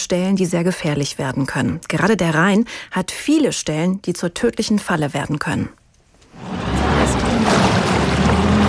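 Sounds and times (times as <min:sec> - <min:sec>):
speech: 0:00.0 - 0:05.8
rescue motorboat engine roaring across a river: 0:06.4 - 0:08.6.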